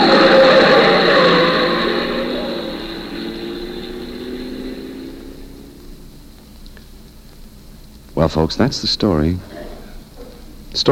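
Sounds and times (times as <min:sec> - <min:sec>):
car engine roaring past: 0:00.0 - 0:06.3
speech: 0:08.3 - 0:09.5.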